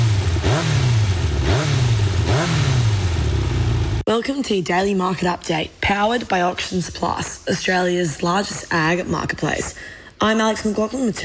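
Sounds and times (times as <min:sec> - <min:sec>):
Yamaha motorcycle engine revving hard: 0:00.0 - 0:04.1
speech: 0:04.2 - 0:11.2.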